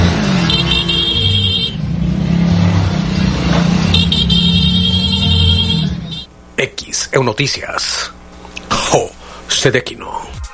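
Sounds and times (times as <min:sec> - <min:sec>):
motorcycle engines revving in a funeral procession: 0:00.0 - 0:06.3
speech: 0:07.1 - 0:08.1, 0:08.9 - 0:10.4.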